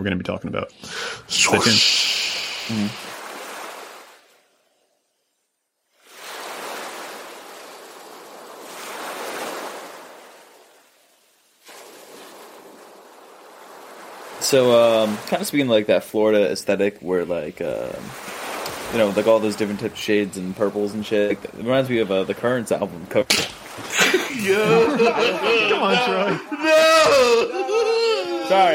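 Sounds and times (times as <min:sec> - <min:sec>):
speech: 0:00.0 - 0:03.1, 0:14.5 - 0:18.3, 0:18.9 - 0:27.7, 0:28.5 - 0:28.7
sharp breathy burst: 0:00.8 - 0:03.5
ocean waves washing in and receding in hissing surf: 0:00.9 - 0:26.7
laughter: 0:23.8 - 0:28.7.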